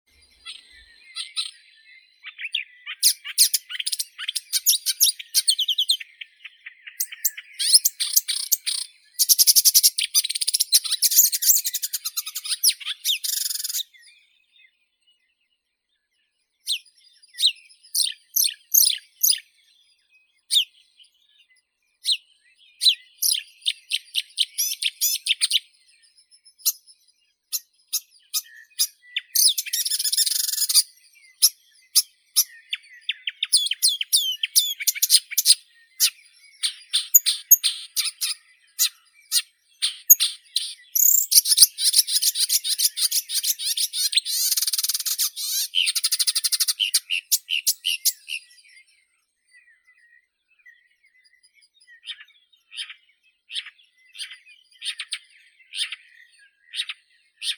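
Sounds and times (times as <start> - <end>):
marsh warbler Acrocephalus palustris singing: 0.2 - 14.7, 16.8 - 57.5.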